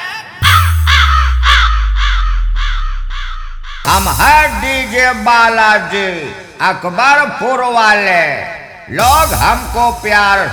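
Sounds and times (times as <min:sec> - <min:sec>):
crow cawing: 0:00.4 - 0:03.8
deep sustained bass rumble: 0:00.4 - 0:06.4
speech: 0:03.9 - 0:10.5.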